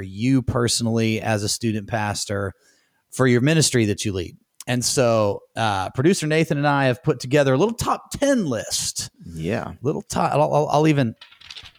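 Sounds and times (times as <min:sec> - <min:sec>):
speech: 0:00.0 - 0:11.7
paper being shaken and rustled: 0:11.2 - 0:11.7.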